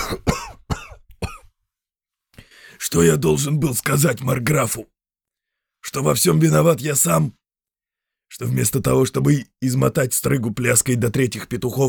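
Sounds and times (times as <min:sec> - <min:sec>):
man coughing after gulping from a goblet: 0:00.0 - 0:01.5
speech: 0:02.8 - 0:05.0, 0:05.9 - 0:07.4, 0:08.3 - 0:11.8.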